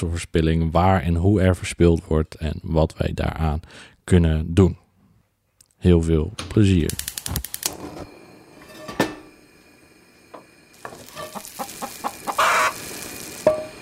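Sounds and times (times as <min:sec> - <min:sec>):
speech: 0:00.0 - 0:04.8, 0:05.8 - 0:07.5
sharp clicking: 0:06.8 - 0:07.7
sizzling frying-like hiss: 0:06.8 - 0:13.8
chickens clucking: 0:11.2 - 0:12.8.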